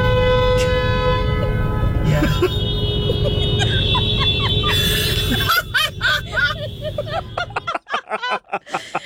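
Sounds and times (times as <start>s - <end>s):
car horns honking in a parking lot: 0.0s - 8.0s
people laughing: 2.1s - 9.0s.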